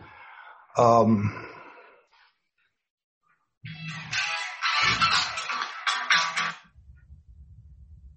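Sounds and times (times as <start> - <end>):
phone ringtone for an incoming call: 3.7 - 6.6.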